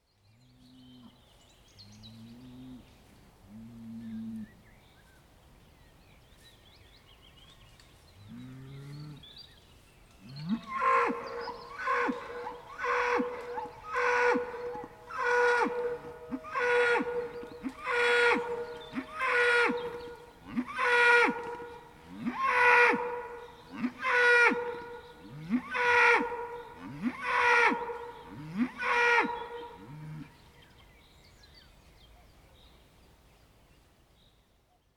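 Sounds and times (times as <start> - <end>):
bull bellowing: 10.4 - 30.3.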